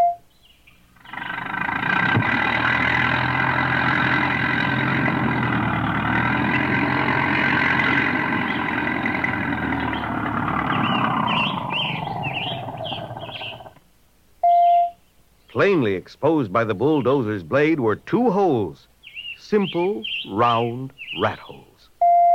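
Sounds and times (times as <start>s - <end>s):
birds chirping: 0.0s - 13.8s, 14.4s - 22.3s
white truck engine idling: 0.8s - 13.8s
speech: 15.6s - 18.9s, 19.5s - 21.7s.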